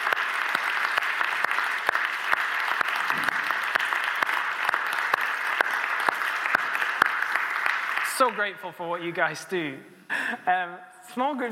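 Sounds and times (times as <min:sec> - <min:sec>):
audience applause: 0:00.0 - 0:08.5
speech: 0:08.2 - 0:11.4.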